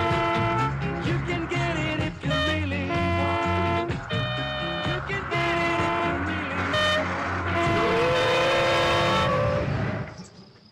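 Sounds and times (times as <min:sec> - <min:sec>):
bus engine roar: 0:00.0 - 0:10.3
bus tires screeching in a skid: 0:03.0 - 0:10.2.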